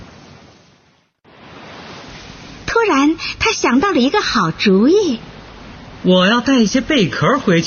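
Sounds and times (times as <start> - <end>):
ocean waves washing onto a beach: 1.3 - 3.5
speech: 2.9 - 5.3, 6.0 - 7.6.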